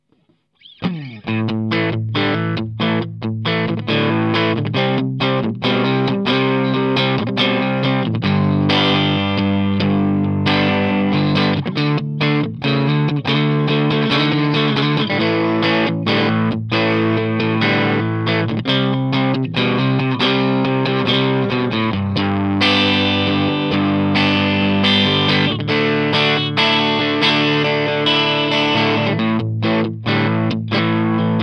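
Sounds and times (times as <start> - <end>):
20w amplifier crunch tone: 0.0 - 31.4.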